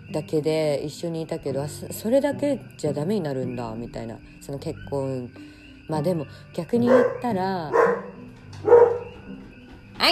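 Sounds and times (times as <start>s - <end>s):
speech: 0.1s - 8.0s, 10.0s - 10.1s
dog barking: 6.8s - 9.2s.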